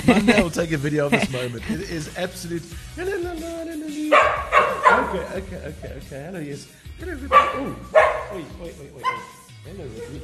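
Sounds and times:
laughter: 0.0 - 3.3, 4.7 - 6.6
speech: 0.1 - 10.2
pet dog barking on noticing its owner: 4.1 - 5.4, 7.3 - 10.2.

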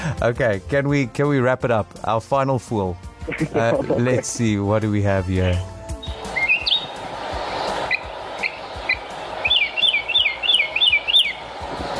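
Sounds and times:
speech: 0.0 - 5.7
laughter: 3.3 - 4.6
mockingbird singing outdoors: 6.0 - 7.0, 7.9 - 11.4.

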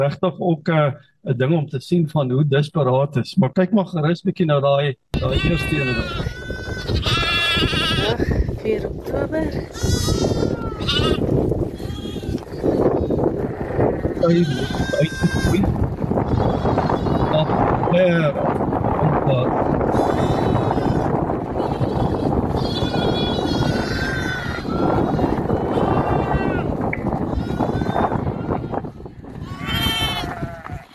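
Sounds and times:
speech: 0.0 - 11.6, 14.2 - 15.8, 17.9 - 18.7, 19.3 - 20.7
flock of sheep bleating: 5.2 - 8.2, 9.7 - 11.2, 11.8 - 17.6, 19.8 - 30.9.

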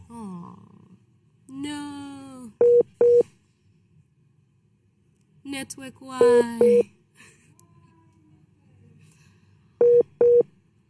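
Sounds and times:
telephone busy tone beeps after dropped phone call: 2.6 - 3.2, 6.2 - 6.8, 9.8 - 10.5
speech: 5.5 - 7.0.

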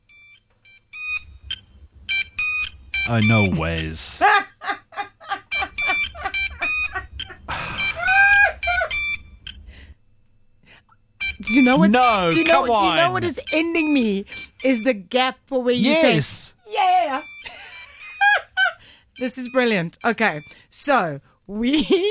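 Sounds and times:
monophonic mobile phone ringtone: 0.1 - 3.6, 5.5 - 9.6, 11.2 - 14.6, 17.1 - 18.2
speech: 3.1 - 4.4, 11.7 - 17.3, 19.2 - 22.0
people exclaiming and laughing: 3.1 - 8.9, 11.4 - 14.0, 15.8 - 18.8.

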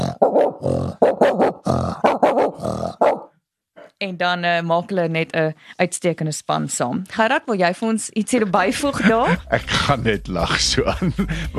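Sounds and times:
person imitating a big dog barking at the gates: 0.0 - 3.3
speech: 4.0 - 11.5
laughter: 8.4 - 11.5.

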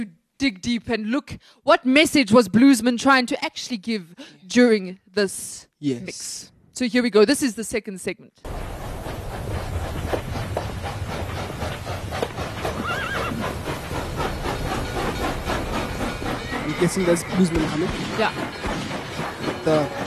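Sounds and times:
speech: 0.0 - 8.7, 16.8 - 18.7, 19.6 - 20.0
train rumbling past with rhythmic clatter: 8.4 - 20.0
hoofbeats: 8.5 - 20.0
horse whinnies: 12.8 - 13.5.

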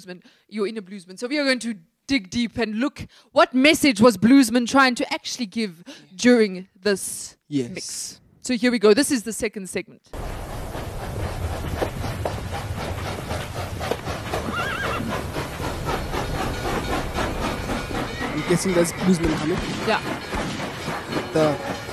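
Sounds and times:
speech: 0.0 - 10.2, 18.5 - 20.6, 21.3 - 21.9
hooves clip-clopping: 10.2 - 21.9
train rolling along rails: 10.2 - 21.9
horse whinnying with a wavering high neigh: 14.4 - 15.2
high metallic squeal or whistle tone: 16.1 - 21.9.

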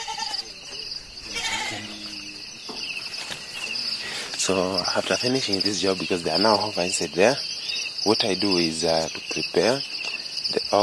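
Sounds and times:
goats bleating: 0.0 - 0.5, 1.2 - 2.3
faint rustling and movement: 0.0 - 5.8
steady hiss of outdoor noise: 0.0 - 10.8
speech: 4.5 - 10.8.

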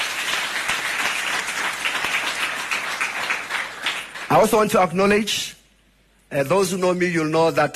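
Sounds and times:
crowd applauding with dense overlapping claps: 0.0 - 4.6
speech: 4.3 - 5.6, 6.3 - 7.7.

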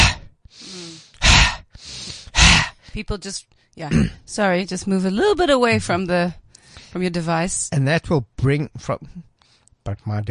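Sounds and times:
forceful breaths of a fire-breath exercise: 0.0 - 3.0
speech: 3.0 - 10.2.

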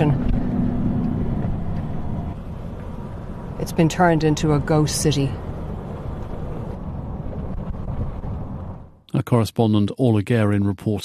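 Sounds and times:
car driving through a flattened town: 0.0 - 9.3
speech: 3.6 - 5.4, 9.3 - 11.0.

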